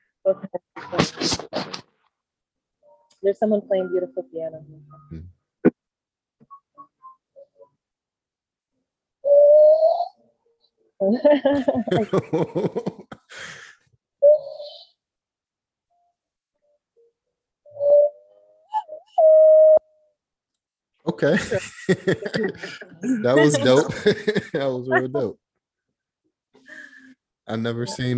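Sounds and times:
speech: 0.2s - 1.9s, 3.2s - 5.3s, 11.0s - 13.6s, 21.1s - 25.4s, 27.5s - 28.1s
Brazilian Indian-style whistling: 9.3s - 10.1s, 17.8s - 19.9s
laughter: 11.1s - 13.6s, 21.2s - 25.3s.

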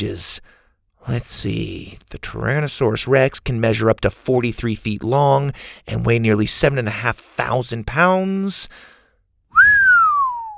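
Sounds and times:
speech: 0.0s - 8.9s
person whistling: 9.6s - 10.5s.

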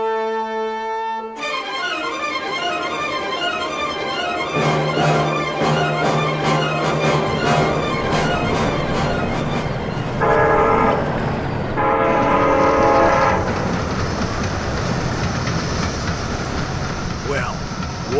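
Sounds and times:
long train horn blasts: 0.0s - 13.7s
train rumbling and clattering on tracks while slowing to a stop: 2.6s - 18.1s.

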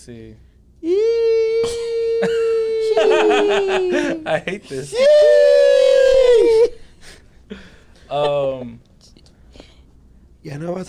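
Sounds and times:
speech: 0.0s - 5.6s, 7.5s - 8.9s, 10.4s - 10.8s
dog howling: 1.2s - 4.3s, 4.9s - 6.8s
laughter: 1.8s - 5.2s, 6.0s - 8.8s.

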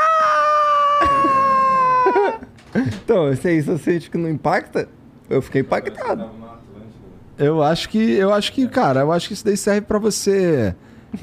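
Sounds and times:
person imitating a dominant chest-beating yell: 0.0s - 2.4s
laughter: 0.8s - 3.1s
speech: 2.8s - 6.5s, 7.4s - 11.2s.

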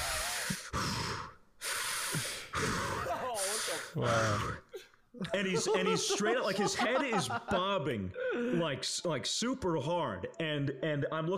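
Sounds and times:
man imitating heavy rasping breathing under a blanket: 0.0s - 4.8s
speech: 3.9s - 11.3s
laughter: 5.2s - 8.8s.

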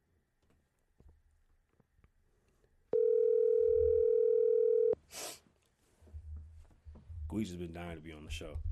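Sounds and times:
phone line ringing on an outgoing call: 2.9s - 5.0s
speech: 7.4s - 8.7s.

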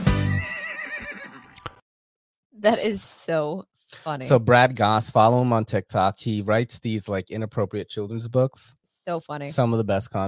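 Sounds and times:
horse neighing: 0.1s - 1.6s
speech: 2.6s - 10.2s.

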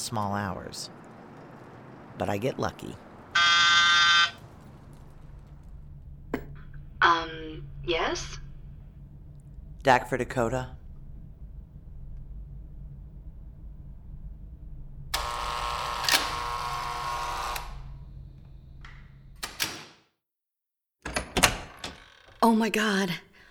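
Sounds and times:
low rumble: 0.0s - 15.2s
speech: 0.1s - 1.0s, 2.2s - 3.1s, 7.6s - 8.4s, 9.8s - 10.8s, 22.4s - 23.3s
door creaking open: 3.3s - 6.8s, 15.2s - 20.0s, 21.0s - 22.8s
door shutting with knocks and a thud: 18.8s - 20.0s, 21.0s - 22.4s.

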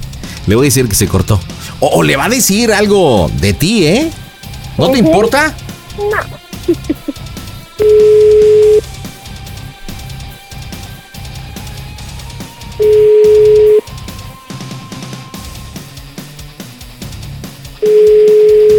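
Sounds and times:
speech: 0.5s - 4.2s, 4.8s - 7.2s, 7.8s - 8.9s
laughter: 6.0s - 7.3s
telephone ringback tone during a call: 7.8s - 8.8s, 12.8s - 13.8s, 17.8s - 18.7s.

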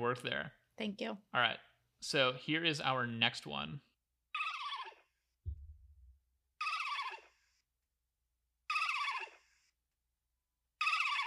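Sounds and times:
speech: 0.0s - 3.9s
sci-fi film swamp creature warbling bird-like call: 4.4s - 5.0s, 6.6s - 7.3s, 8.7s - 9.4s, 10.8s - 11.2s
deep low thud: 5.5s - 6.2s.

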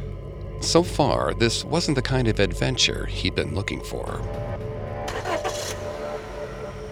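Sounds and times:
car engine cranking, starting and idling: 0.0s - 6.9s
speech: 0.6s - 4.6s.

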